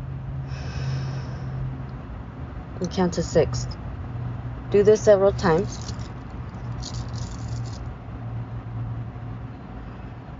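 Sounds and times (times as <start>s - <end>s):
slow breathing during a guided breathing exercise: 0.4s - 1.7s
speech: 2.8s - 3.8s, 4.7s - 5.9s.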